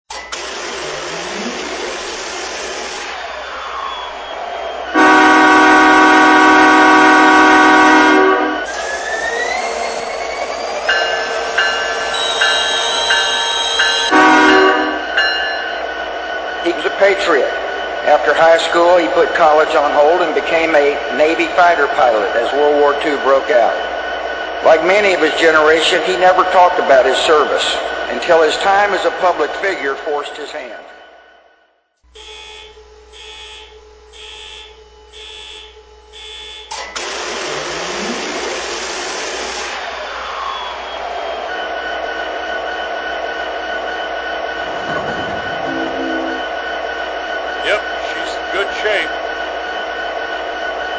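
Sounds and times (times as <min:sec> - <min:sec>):
SD70ACe diesel locomotive: 0:00.1 - 0:50.9.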